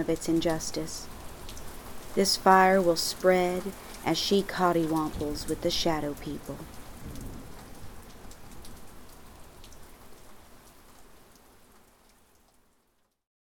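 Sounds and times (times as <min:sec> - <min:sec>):
speech: 0:00.0 - 0:01.2, 0:02.1 - 0:07.2
heavy rain: 0:00.0 - 0:13.1
distant thunder: 0:06.9 - 0:08.1.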